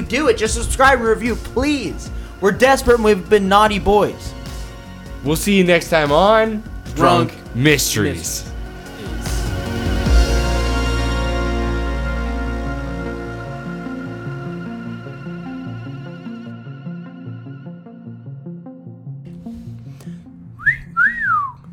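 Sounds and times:
instrumental music with a steady bass: 0:00.0 - 0:21.7
speech: 0:00.1 - 0:04.4, 0:05.2 - 0:08.5
person whistling: 0:20.6 - 0:21.7.

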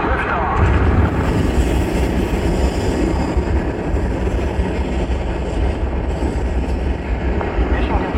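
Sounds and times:
rocket engines roaring at liftoff of a mission to Mars: 0:00.0 - 0:08.1.

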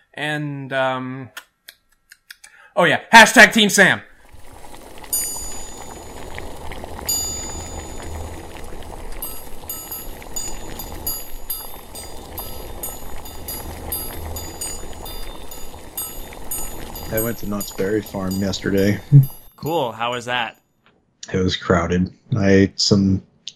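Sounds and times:
speech: 0:00.2 - 0:01.5, 0:02.8 - 0:04.1, 0:17.2 - 0:20.6, 0:21.3 - 0:23.3
synthetic bubbling and gurgling water intro effect: 0:04.1 - 0:19.7
bright tonal chimes: 0:05.0 - 0:20.3.

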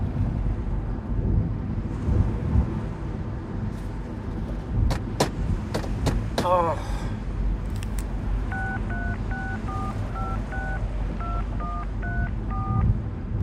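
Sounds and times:
low rumble: 0:00.0 - 0:13.4
telephone keypad dialing tones: 0:08.5 - 0:12.9.

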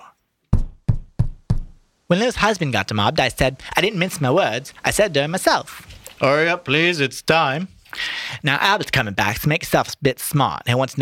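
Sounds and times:
firm knocks on a wooden door: 0:00.5 - 0:01.8
speech: 0:02.1 - 0:11.0.

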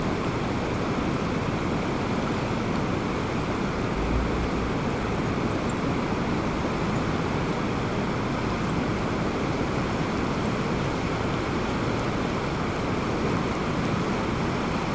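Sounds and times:
creek water rushing along its bank: 0:00.0 - 0:14.9.

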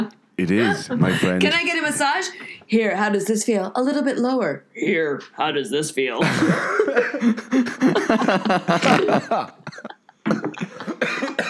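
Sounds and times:
speech: 0:00.4 - 0:10.0
person chuckling: 0:06.2 - 0:11.4
person coughing: 0:08.8 - 0:11.4.

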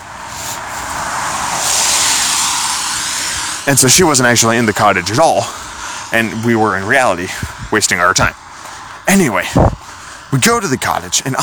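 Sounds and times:
car driving past with tire and engine roar: 0:00.0 - 0:09.0
speech: 0:03.7 - 0:08.5, 0:09.1 - 0:11.4.

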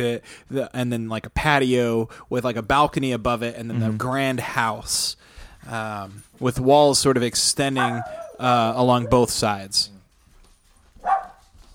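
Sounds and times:
speech: 0:00.0 - 0:10.0
small guard dog barking: 0:07.8 - 0:09.3, 0:11.0 - 0:11.4.

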